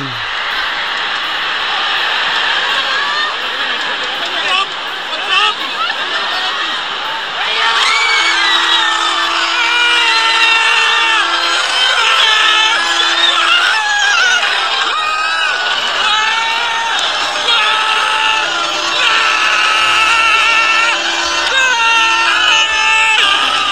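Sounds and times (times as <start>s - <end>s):
Spanish football fan screaming in goal celebration: 0.0s - 23.7s
horn-like tones: 0.0s - 23.7s
laughter: 0.0s - 23.7s
roaring crowd: 0.0s - 23.7s.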